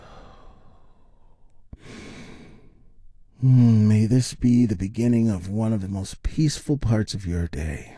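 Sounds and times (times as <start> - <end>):
long airy exhale like a sigh: 0.0 - 2.8
deep inhale: 0.0 - 3.8
speech: 3.4 - 7.9.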